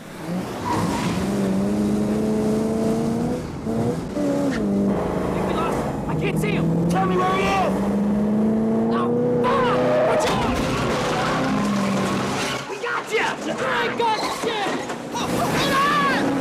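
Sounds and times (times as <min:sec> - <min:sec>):
car engines roaring and revving in a chase through a car park: 0:00.0 - 0:16.3
car tire squeals: 0:00.5 - 0:01.4, 0:09.4 - 0:12.7, 0:13.6 - 0:16.3.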